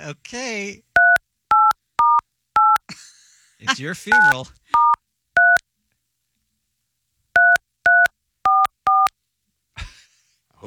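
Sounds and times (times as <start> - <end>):
speech: 0.0 - 0.9, 3.6 - 4.9
telephone keypad dialing tones: 1.0 - 2.8, 4.1 - 5.6, 7.4 - 9.1.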